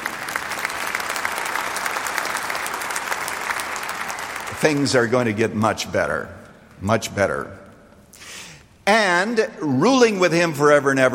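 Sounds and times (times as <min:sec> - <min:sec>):
large audience clapping: 0:00.0 - 0:05.4
speech: 0:04.6 - 0:07.6, 0:08.9 - 0:11.1.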